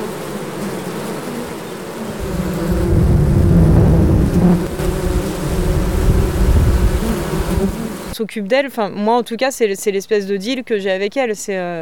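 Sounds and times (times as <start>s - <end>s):
many honeybees buzzing as they work: 0.0s - 8.2s
speech: 8.2s - 11.8s.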